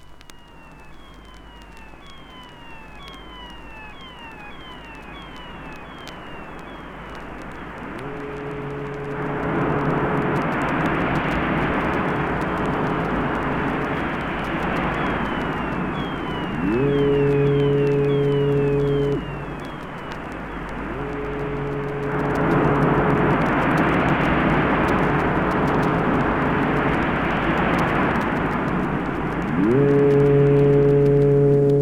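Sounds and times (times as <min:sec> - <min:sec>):
electronic synthesized wash of noise like surging sea: 0:00.0 - 0:31.8
thin falling synthesized gull-like cries: 0:00.0 - 0:31.8
deep synthesized ship horn blasts: 0:07.9 - 0:31.8.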